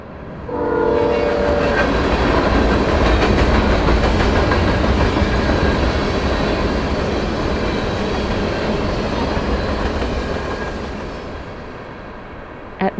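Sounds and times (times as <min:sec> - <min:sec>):
train rumbling past on railroad tracks: 0:00.2 - 0:12.0
train horn blast: 0:00.5 - 0:01.9.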